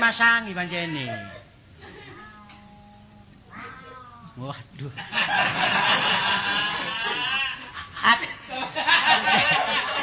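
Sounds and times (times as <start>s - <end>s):
speech: 0.1s - 1.5s, 4.4s - 9.9s
fierce cat meowing: 2.1s - 4.4s
laughter: 5.0s - 10.0s.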